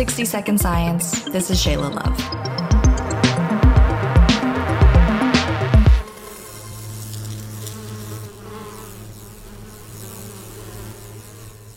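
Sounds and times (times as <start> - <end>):
speech: 0.0 - 2.6
swarm of insects buzzing in a dense droning hum: 2.6 - 11.7.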